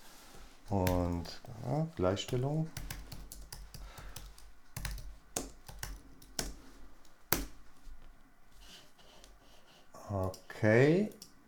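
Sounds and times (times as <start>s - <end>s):
speech: 0.7s - 2.9s, 10.1s - 11.2s
typing on a computer keyboard: 2.2s - 6.6s, 10.2s - 11.4s.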